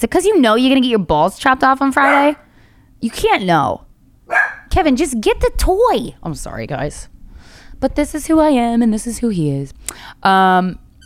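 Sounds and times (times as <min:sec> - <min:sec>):
speech: 0:00.0 - 0:07.1, 0:07.8 - 0:10.8
dog barking: 0:02.0 - 0:02.4, 0:04.3 - 0:04.7.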